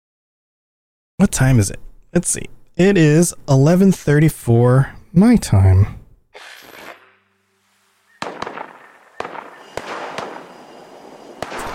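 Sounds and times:
speech: 0:01.2 - 0:06.0
scattered gunshots: 0:06.4 - 0:11.7.

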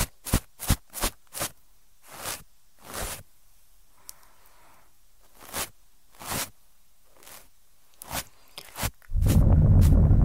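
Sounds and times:
scratchy ear-cleaning rubs and swishes: 0:00.0 - 0:03.3, 0:05.2 - 0:10.2
loud rumbling continuous scraping: 0:09.1 - 0:10.2.

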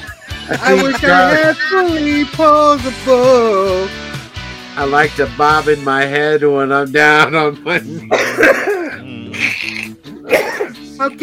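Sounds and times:
laughter: 0:00.0 - 0:01.8, 0:07.2 - 0:09.6
two men coughing: 0:00.2 - 0:01.5, 0:07.8 - 0:11.0
speech: 0:00.5 - 0:04.0, 0:04.8 - 0:08.7, 0:10.3 - 0:11.2
throat clearing: 0:08.0 - 0:10.8.

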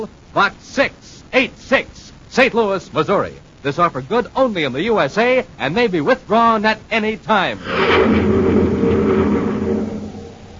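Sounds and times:
speech: 0:00.0 - 0:08.9
surface car engine drone driving through a mountainous region of Mars: 0:07.6 - 0:10.5.

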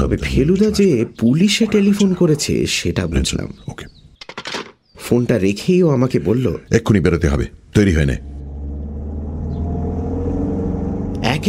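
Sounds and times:
speech: 0:00.0 - 0:03.9, 0:05.1 - 0:08.3
taxi engine rumble driving at top speed through city streets: 0:08.1 - 0:11.4.

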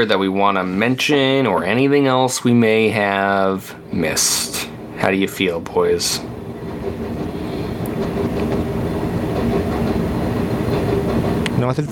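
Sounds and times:
speech: 0:00.0 - 0:06.4, 0:11.6 - 0:11.8
train rumbling past: 0:00.0 - 0:11.8
rhythmic clatter of train wheels on track: 0:02.6 - 0:11.8.

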